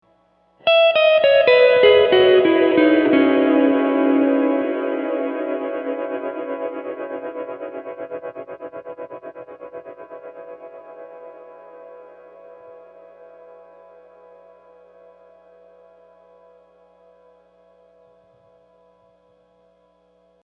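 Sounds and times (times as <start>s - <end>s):
guitars through Strymon Flint tube 70s effect: 0.6s - 11.5s.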